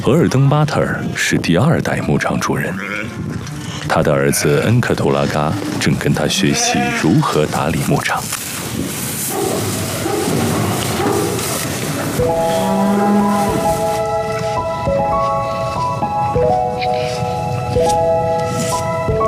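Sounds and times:
speech: 0.0s - 8.4s
cattle lowing on a family grassland ranch in the steppe during calving season: 2.6s - 7.3s, 9.9s - 14.3s
steady sustained tones: 9.7s - 19.2s.

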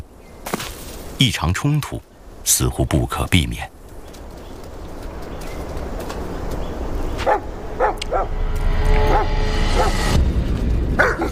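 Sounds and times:
steady rumbling outdoor background: 0.0s - 11.3s
speech: 1.2s - 3.8s
dog barking in sharp woofs: 7.2s - 8.3s, 9.0s - 10.1s, 11.0s - 11.3s.

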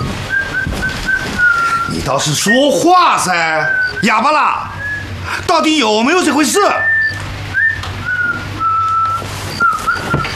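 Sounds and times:
low steady hum: 0.0s - 10.3s
person whistling a short tune: 0.3s - 2.6s, 3.7s - 4.0s, 6.8s - 10.3s
speech: 2.1s - 4.7s, 5.3s - 6.9s.

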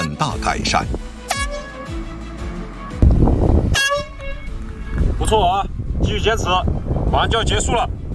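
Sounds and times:
speech: 0.2s - 1.0s, 5.3s - 8.0s
air horn blasts used to distract shooters: 1.2s - 2.1s, 3.6s - 5.0s.

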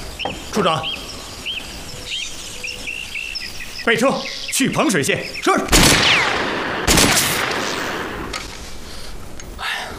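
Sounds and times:
speech: 0.4s - 1.0s, 3.8s - 6.6s
rifle with telescopic sight firing shots with rumbling echo: 5.7s - 8.3s.

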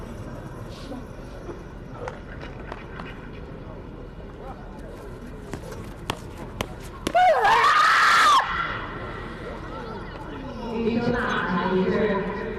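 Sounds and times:
low crowd murmur at an athletics competition: 0.0s - 12.5s
athlete shouting during a throw at an athletics competition: 7.1s - 8.9s.

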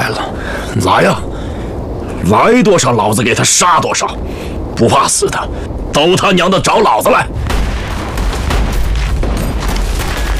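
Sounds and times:
explosions rumbling from fighting in the south: 0.2s - 10.3s
speech: 0.8s - 1.3s, 2.2s - 7.4s
gunshot cracks from fighting in the south: 7.5s - 10.3s.

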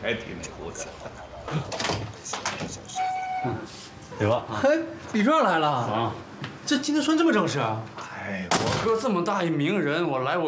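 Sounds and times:
speech: 0.0s - 10.4s
door being opened: 1.6s - 3.6s.

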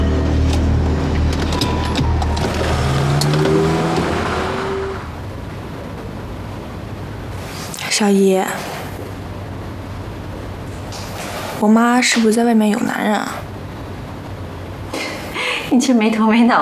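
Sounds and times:
car engine revving as the car pulls away: 0.0s - 7.6s
road noise: 0.0s - 16.5s.

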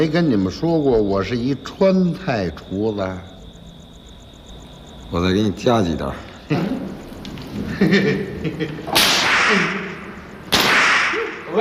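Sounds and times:
speech: 0.0s - 3.3s, 5.1s - 7.0s, 7.6s - 9.8s
laughter: 6.5s - 10.0s
whip dipped in water and chili water cracking: 8.9s - 11.5s.

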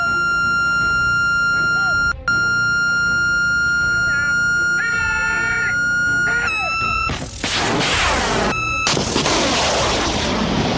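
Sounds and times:
high electronic lock-on tone from a missile seeker: 0.0s - 7.3s, 8.4s - 9.1s
roaring blast and rushing noise of missiles being fired: 7.2s - 10.7s.

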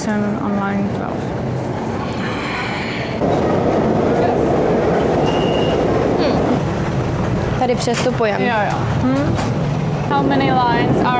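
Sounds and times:
speech: 0.0s - 1.4s, 7.7s - 11.1s
subway train rumbling through a tunnel in Beijing: 0.0s - 11.1s.

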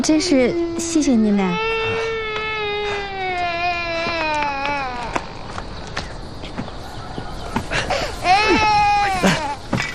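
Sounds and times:
child wailing and sobbing: 0.2s - 5.6s, 7.9s - 9.7s.

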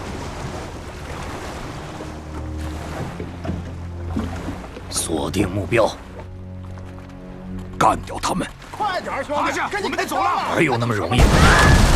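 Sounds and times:
boat engine droning on the ocean: 0.0s - 7.7s
ocean waves sloshing: 0.0s - 11.9s
wind on the ocean: 0.0s - 11.9s
speech: 5.0s - 6.1s, 7.8s - 11.9s
laughter: 9.6s - 11.2s.

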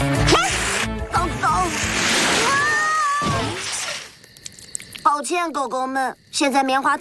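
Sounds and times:
water cannon spraying water over burnt marshmallows: 0.2s - 4.1s
speech: 5.3s - 6.9s.

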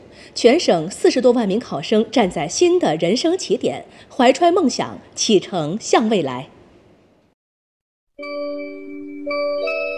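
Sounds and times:
faint noise: 0.0s - 7.4s
speech: 0.3s - 6.6s
electronic exam-end bell chime in China: 8.2s - 9.9s.

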